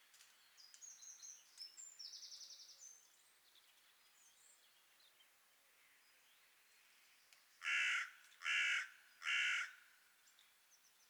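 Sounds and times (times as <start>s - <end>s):
Carrion crow Corvus corone cawing: 7.6s - 9.8s.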